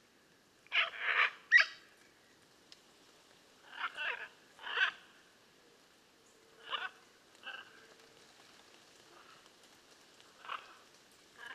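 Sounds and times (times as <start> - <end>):
blue-and-yellow macaw Ara ararauna giving rough raspy squawks: 0.7 - 1.8, 3.7 - 5.0.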